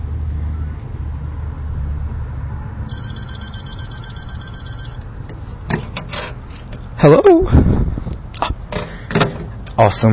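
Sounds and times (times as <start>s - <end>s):
phone ringing with a rapid warbling electronic trill: 2.9s - 5.0s
speech: 7.0s - 7.9s, 9.8s - 10.1s.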